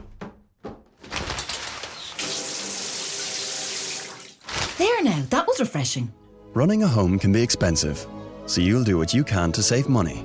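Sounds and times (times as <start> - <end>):
short knocks and rattles: 0.0 - 2.1
shower water running: 1.1 - 4.7
speech: 4.8 - 10.2.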